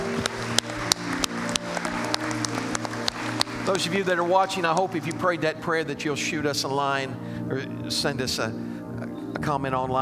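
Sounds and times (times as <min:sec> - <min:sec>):
audience applauding: 0:00.0 - 0:05.5
speech: 0:03.7 - 0:08.7, 0:09.4 - 0:10.0.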